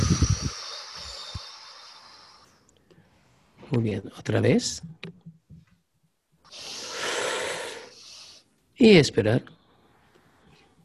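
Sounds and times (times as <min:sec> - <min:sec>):
person exhaling slowly during a guided breathing exercise: 0:00.0 - 0:02.6, 0:06.5 - 0:08.4
speech: 0:03.7 - 0:05.3, 0:08.8 - 0:09.6.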